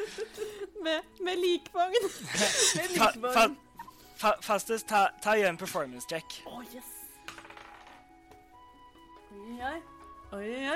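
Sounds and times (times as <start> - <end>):
speech: 0.8 - 3.6, 4.2 - 7.0, 9.4 - 10.7
laughter: 2.0 - 3.2
die rolling across a hard tabletop: 7.3 - 8.1.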